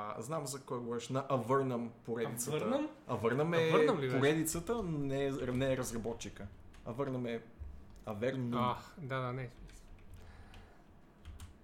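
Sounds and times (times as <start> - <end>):
speech: 0.0 - 9.8
low steady hum: 0.0 - 11.6
quiet irregular keyboard typing: 4.6 - 11.6.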